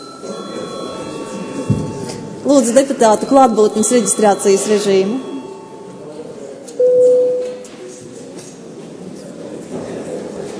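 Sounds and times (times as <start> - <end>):
parliamentary chamber bell ringing to call a break in the session: 0.0 - 6.1
murmuring room: 0.0 - 10.5
speech: 1.7 - 5.3.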